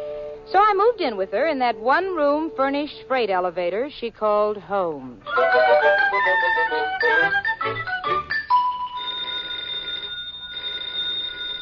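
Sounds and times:
speech: 0.5 - 8.0
metallic telephone bell ringing: 7.0 - 11.5.

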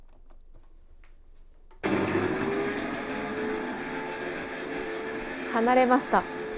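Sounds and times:
coffee machine grinding and brewing: 1.8 - 6.5
speech: 5.6 - 6.4.

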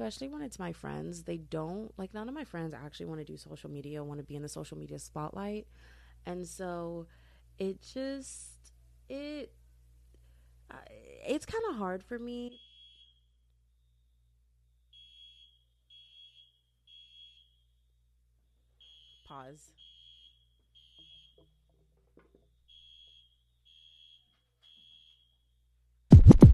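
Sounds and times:
speech: 0.0 - 8.5, 9.1 - 9.6, 10.7 - 12.7, 19.3 - 19.8
fire alarm beeping in high-pitched tones: 12.5 - 21.5, 22.6 - 25.4.

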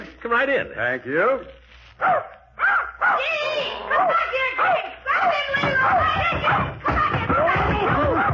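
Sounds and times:
speech: 0.2 - 2.4, 3.2 - 8.3
puppy barking: 2.0 - 6.7, 8.0 - 8.3.

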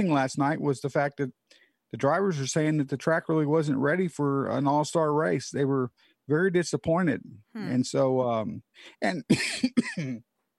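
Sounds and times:
speech: 0.0 - 10.3
person coughing: 9.3 - 10.2.

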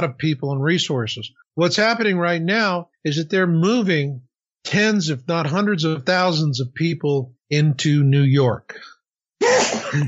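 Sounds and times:
speech: 0.0 - 8.9
person sneezing: 9.4 - 10.0.

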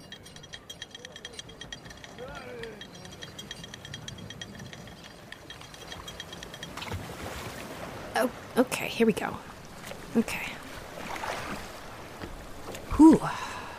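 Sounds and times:
rope strain: 0.0 - 7.0
wooden creaks of rowboat being lowered from a ship: 0.0 - 7.0
splash and churn as rowboat hull meets the water: 0.8 - 13.7
speech: 8.2 - 9.5, 10.1 - 10.5, 13.1 - 13.4.

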